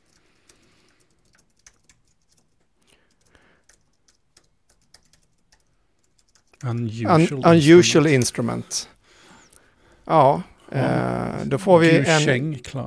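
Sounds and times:
rapid typing on a computer keyboard: 0.0s - 7.0s
speech: 6.6s - 9.0s, 10.1s - 12.8s.

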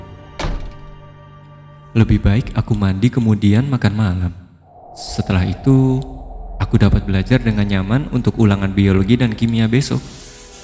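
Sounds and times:
door being opened with a dull heavy thunk: 0.4s - 1.0s
speech: 2.0s - 4.4s, 5.0s - 10.2s.

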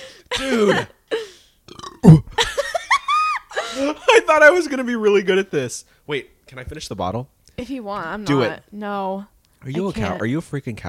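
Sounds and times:
person burping into the microphone: 0.4s - 0.9s, 1.7s - 2.4s
speech: 0.4s - 1.0s, 2.0s - 2.2s, 4.3s - 10.8s.

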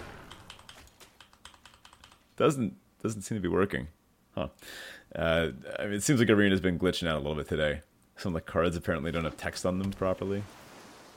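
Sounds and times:
keys pressed on a computer keyboard during a digital card game: 0.2s - 2.2s
speech: 2.4s - 10.6s.

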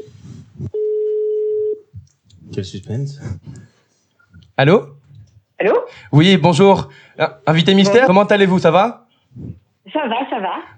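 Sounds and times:
telephone ring tone as a call is placed: 0.7s - 1.8s
speech: 2.6s - 3.7s, 4.6s - 5.0s, 5.6s - 10.7s.

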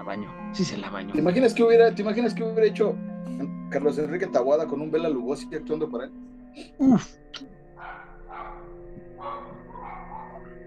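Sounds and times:
speech: 0.0s - 7.5s
neighbors' dogs barking: 7.8s - 10.6s.

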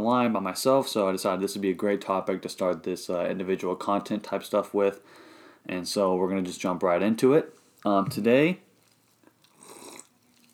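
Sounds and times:
speech: 0.0s - 8.6s
person slurping a drink: 9.5s - 10.5s.

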